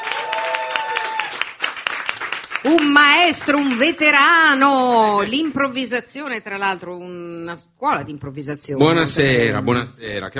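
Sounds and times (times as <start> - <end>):
audience applauding at a comedy night: 0.0 - 4.2
speech: 2.6 - 10.3.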